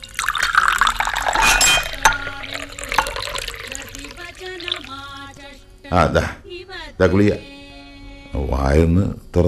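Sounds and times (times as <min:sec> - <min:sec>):
glass clinks: 0:00.0 - 0:03.7
water pouring into a glass: 0:00.0 - 0:05.3
speech: 0:05.9 - 0:06.4, 0:07.0 - 0:07.5, 0:08.5 - 0:09.4.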